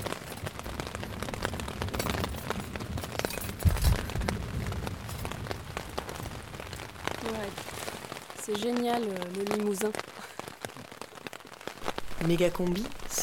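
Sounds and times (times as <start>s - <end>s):
low thunder rumble: 0.0s - 9.0s
heavy thunderstorm rain on a hard surface: 0.0s - 13.2s
speech: 8.5s - 10.1s, 12.2s - 13.2s.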